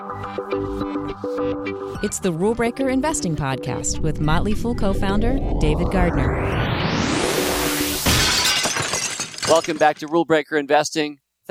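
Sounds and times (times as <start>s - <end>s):
speech: 0.2s - 7.4s, 9.5s - 11.4s
glass breaking: 8.0s - 10.1s.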